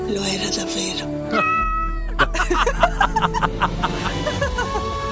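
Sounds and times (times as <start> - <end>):
speech: 0.1 - 1.6
cats meowing: 1.3 - 2.2
laughter: 2.0 - 5.0.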